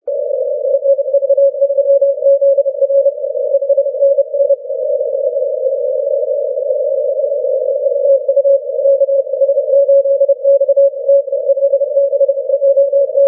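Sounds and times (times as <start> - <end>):
17m morse code signal: 0.1 - 13.2.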